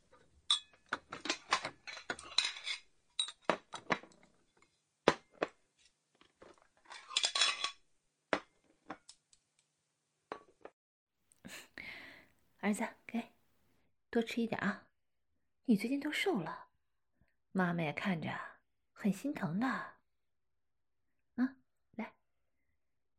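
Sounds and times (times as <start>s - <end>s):
bowls and chopsticks set on table clinking: 0.5s - 3.6s, 6.9s - 7.8s
speech: 12.7s - 13.3s, 14.1s - 14.8s, 15.7s - 16.6s, 17.6s - 19.9s, 21.4s - 22.1s.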